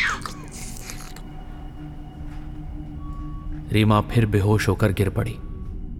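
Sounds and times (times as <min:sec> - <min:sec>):
slurping blood through a tube: 0:00.0 - 0:01.2
speech: 0:03.7 - 0:05.5.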